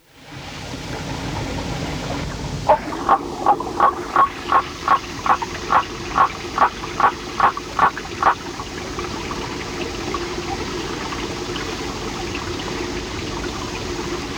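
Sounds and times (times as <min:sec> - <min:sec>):
steady rushing water: 0:01.0 - 0:14.3
Waterfall Frog Litoria nannotis giving a rapid run of short notes: 0:02.7 - 0:08.4.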